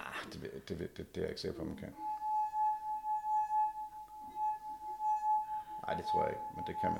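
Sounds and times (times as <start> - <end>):
speech: 0.2 - 2.1, 5.8 - 6.9
ringing tone from a glass rim being rubbed: 2.0 - 6.9.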